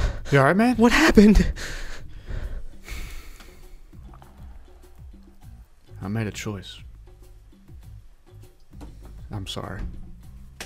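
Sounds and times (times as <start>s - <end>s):
person gasping for breath after being choked: 0.0s - 0.3s, 1.4s - 4.8s
speech: 0.3s - 1.9s, 6.0s - 6.9s, 9.3s - 10.0s.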